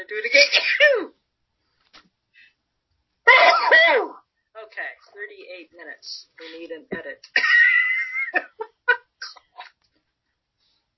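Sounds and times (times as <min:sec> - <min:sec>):
speech: 0:00.1 - 0:01.1, 0:05.6 - 0:07.6
short raspy cough with a throaty voiced tail: 0:03.3 - 0:04.2, 0:09.2 - 0:09.6.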